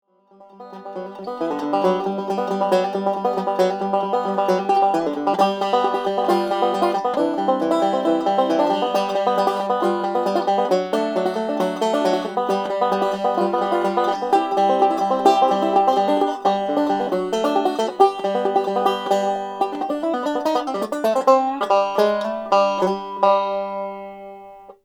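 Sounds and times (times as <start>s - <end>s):
mahogany banjo: 0.2s - 24.8s.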